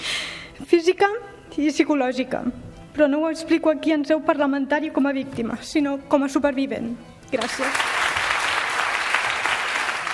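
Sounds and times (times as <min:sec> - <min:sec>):
speech: 0:00.6 - 0:07.9
sustained applause from a large group of parliament deputies: 0:07.4 - 0:10.1.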